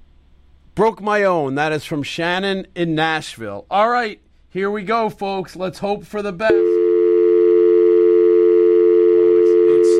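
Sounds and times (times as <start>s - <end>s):
speech: 0.8s - 6.7s
telephone line tone during a live radio call being dialed: 6.5s - 9.9s.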